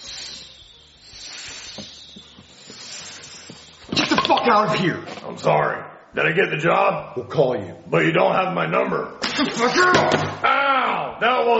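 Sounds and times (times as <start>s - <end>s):
person hissing with their mouth imitating a snake: 0.0s - 3.8s
speech: 4.4s - 11.5s.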